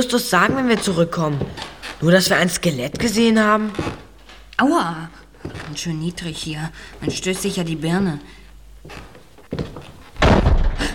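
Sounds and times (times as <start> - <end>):
speech: 0.0 - 4.0, 4.6 - 9.9
door falling shut in a low cramped passage: 10.2 - 10.9.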